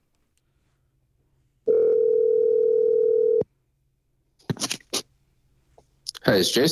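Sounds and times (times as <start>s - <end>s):
steady telephone tone: 1.7s - 3.4s
speech: 6.3s - 6.7s.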